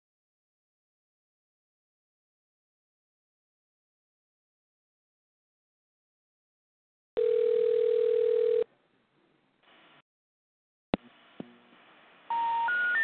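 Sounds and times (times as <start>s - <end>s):
landline telephone dial tone: 7.2s - 8.7s
telephone keypad tones beeping: 12.3s - 13.0s.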